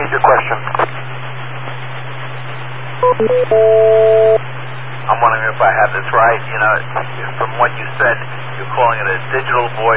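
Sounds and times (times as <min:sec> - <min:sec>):
constant low electrical hum: 0:00.0 - 0:09.9
speech: 0:00.2 - 0:00.8, 0:03.0 - 0:04.2, 0:05.2 - 0:09.9
DTMF dialing tones keying up a UHF radio: 0:03.0 - 0:04.4.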